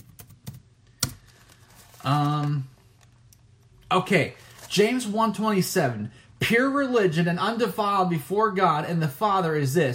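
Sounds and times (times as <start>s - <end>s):
computer keyboard keystrokes: 0.0s - 1.2s
speech: 2.0s - 2.7s, 3.9s - 9.9s.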